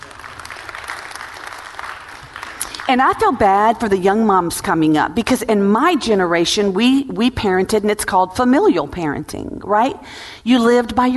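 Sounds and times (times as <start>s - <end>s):
room full of people clapping: 0.0s - 2.9s
speech: 2.9s - 11.1s.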